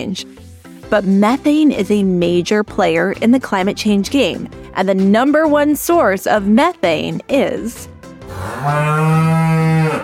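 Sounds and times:
speech: 0:00.0 - 0:07.9, 0:08.6 - 0:09.4
cow mooing: 0:08.3 - 0:10.0.

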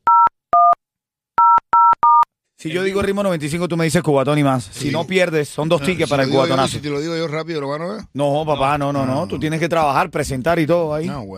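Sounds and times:
telephone keypad dialing tones: 0:00.0 - 0:00.8, 0:01.4 - 0:02.3
speech: 0:02.6 - 0:11.3.

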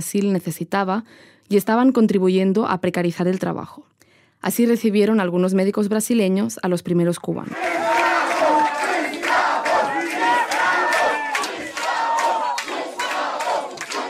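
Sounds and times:
speech: 0:00.0 - 0:08.0
large crowd booing and shouting: 0:07.5 - 0:14.0.

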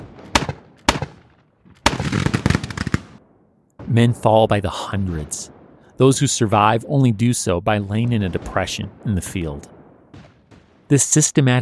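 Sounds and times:
rifle fire of riflemen in a battle sound effect: 0:00.0 - 0:04.1, 0:08.0 - 0:11.0
speech: 0:03.9 - 0:09.8, 0:10.9 - 0:11.5.

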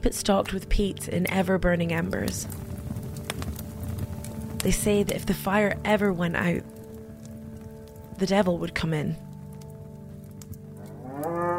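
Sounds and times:
speech: 0:00.0 - 0:02.7, 0:04.6 - 0:06.7, 0:08.2 - 0:09.2
cow mooing: 0:10.8 - 0:11.5.

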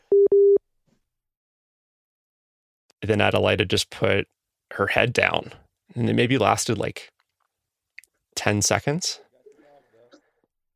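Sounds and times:
two short electronic beeps from a phone line, call disconnected: 0:00.1 - 0:00.6
speech: 0:03.0 - 0:07.2, 0:08.4 - 0:09.2.

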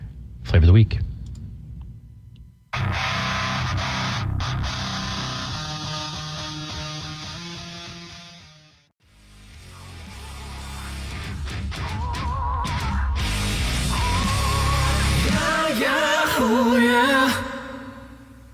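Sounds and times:
speech: 0:00.6 - 0:01.1
distorted guitars: 0:02.7 - 0:17.4
heavy rock cover song: 0:02.8 - 0:08.5, 0:09.3 - 0:17.4
driving drums: 0:09.5 - 0:15.9.

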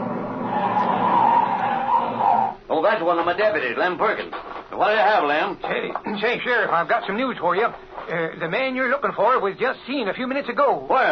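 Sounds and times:
car screeching to a halt with tires skidding: 0:00.0 - 0:02.6
speech: 0:02.9 - 0:11.0.

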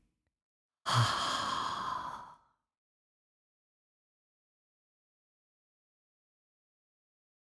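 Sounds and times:
breathy exhale imitating ocean waves during a breathing exercise: 0:00.9 - 0:02.4.

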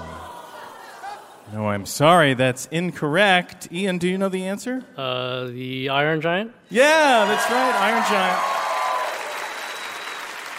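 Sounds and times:
speech: 0:01.5 - 0:08.6
studio audience applause on a quiz: 0:06.8 - 0:10.5.

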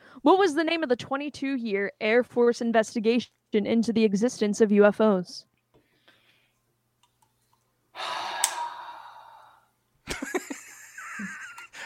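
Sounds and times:
speech: 0:00.2 - 0:05.5
heavy exhale and ragged hard breathing with faint vocal strain: 0:08.0 - 0:09.7.

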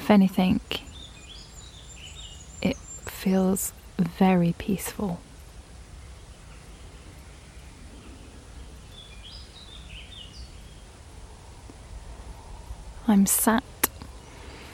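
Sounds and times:
soft steady outdoor hiss: 0:00.0 - 0:14.7
speech: 0:00.1 - 0:00.9, 0:02.6 - 0:05.3, 0:13.1 - 0:13.8
faint bird chirps in an oak woodland: 0:00.7 - 0:03.5, 0:05.9 - 0:12.6.

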